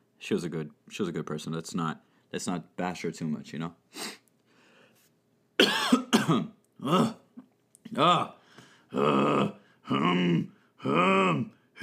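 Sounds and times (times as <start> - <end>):
speech: 0.2 - 4.2, 6.3 - 7.2, 8.0 - 11.8
person with an irritated throat coughing: 5.6 - 7.4
person with an irritated throat clearing their throat: 5.6 - 7.5.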